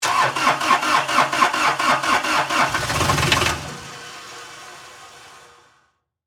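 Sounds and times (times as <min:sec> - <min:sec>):
Toro Reelmaster 5200-D lawn mower starting and stalling on golf course: 0:00.0 - 0:04.7.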